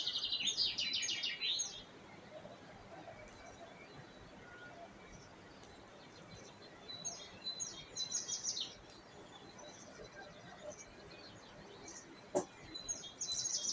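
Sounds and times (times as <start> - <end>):
birdsong: 0.0 - 13.7.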